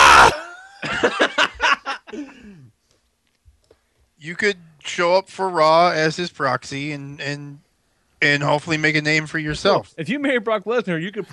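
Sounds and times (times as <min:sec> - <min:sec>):
man mimicking a scream with strained vocal yelps: 0:00.0 - 0:00.7
laughter: 0:00.0 - 0:02.4
speech: 0:04.2 - 0:07.6, 0:08.2 - 0:11.3.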